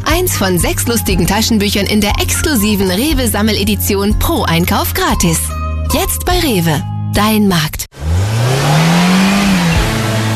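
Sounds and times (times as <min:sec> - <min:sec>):
speech: 0:00.2 - 0:07.8
car engine revving: 0:07.9 - 0:10.3.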